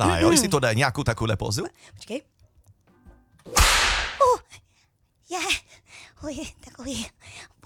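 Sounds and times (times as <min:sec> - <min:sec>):
speech: 0:00.0 - 0:02.3, 0:05.3 - 0:07.6
whip crack: 0:03.5 - 0:04.2.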